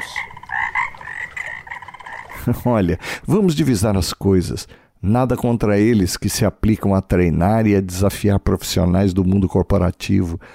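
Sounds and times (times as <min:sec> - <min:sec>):
dense chorus of frogs croaking: 0:00.0 - 0:02.6
laughter: 0:00.5 - 0:02.7
speech: 0:02.4 - 0:10.5.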